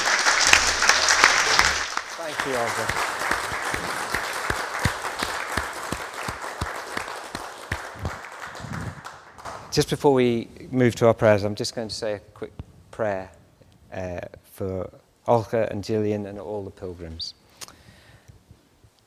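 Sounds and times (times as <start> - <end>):
room full of people applauding: 0.0 - 9.8
speech: 2.4 - 3.2, 9.8 - 17.4.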